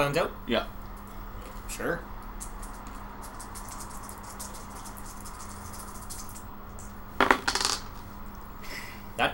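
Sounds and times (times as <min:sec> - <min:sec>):
speech: 0:00.0 - 0:00.8, 0:01.7 - 0:02.1, 0:09.2 - 0:09.3
dice clattering across a tabletop: 0:07.2 - 0:07.9.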